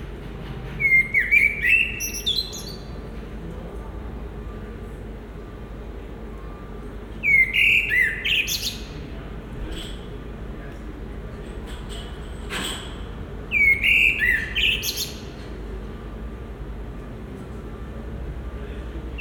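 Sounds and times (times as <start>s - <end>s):
Common blackbird singing mellow whistled phrases: 0.8s - 3.0s, 7.2s - 9.0s, 13.5s - 15.3s.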